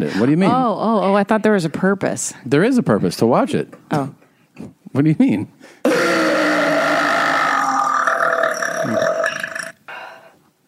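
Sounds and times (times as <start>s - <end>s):
speech: 0.0s - 6.1s
loud burp: 5.9s - 9.8s.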